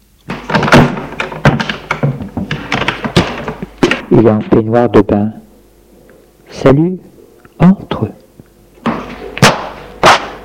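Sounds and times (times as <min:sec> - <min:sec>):
door being pushed shut with solid thuds and latching: 0:00.3 - 0:04.1
speech: 0:04.2 - 0:05.4, 0:06.5 - 0:08.2.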